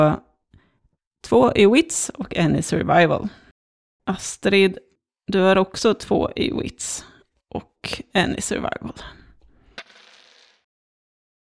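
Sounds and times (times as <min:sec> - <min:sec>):
speech: 0:00.0 - 0:00.2, 0:01.2 - 0:03.4, 0:04.1 - 0:09.2
dice tumbling across a hard surface in a tabletop game: 0:09.8 - 0:10.7.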